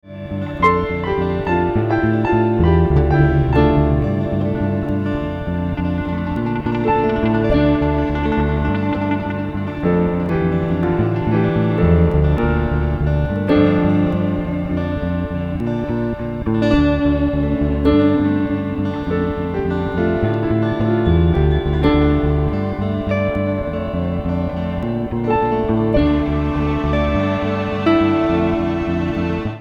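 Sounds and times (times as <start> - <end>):
bass: 0.0 - 29.6
electric guitars: 0.0 - 29.6
piano: 0.0 - 29.6.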